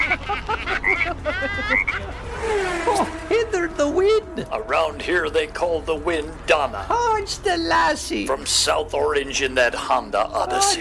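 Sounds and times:
laughter: 0:00.0 - 0:03.2
low rumble of noise: 0:00.0 - 0:10.8
chorus of frogs croaking in an infield pond: 0:00.7 - 0:02.0
speech: 0:05.0 - 0:10.8.

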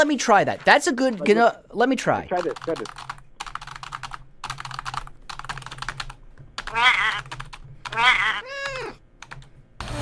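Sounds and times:
speech: 0:00.0 - 0:03.1
typing on a computer keyboard: 0:02.3 - 0:09.5
cat meowing loudly: 0:06.7 - 0:07.2.

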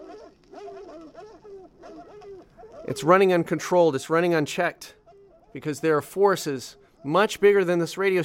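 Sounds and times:
dogs barking and yelping: 0:00.0 - 0:03.3, 0:05.0 - 0:05.6, 0:06.8 - 0:07.2
speech: 0:01.2 - 0:08.2.

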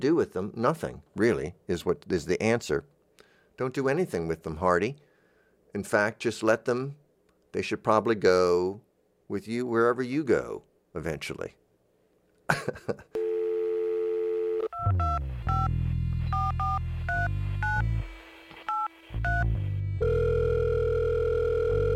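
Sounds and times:
speech: 0:00.0 - 0:03.0, 0:03.6 - 0:05.1, 0:05.7 - 0:11.6, 0:12.5 - 0:13.2
telephone dial tone: 0:13.2 - 0:17.9, 0:18.7 - 0:21.9.

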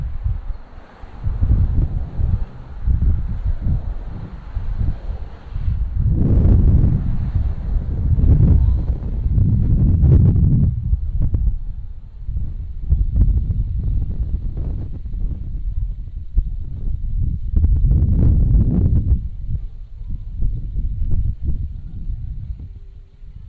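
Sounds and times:
heavy vehicles passing: 0:00.0 - 0:15.8
deep rumbling traffic on a street corner in Brooklyn: 0:00.0 - 0:23.4.

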